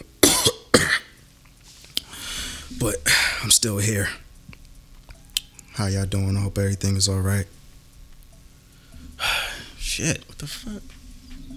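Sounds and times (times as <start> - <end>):
coughing: 0.0 - 1.2
speech: 2.8 - 4.3, 5.8 - 7.6, 10.0 - 11.0.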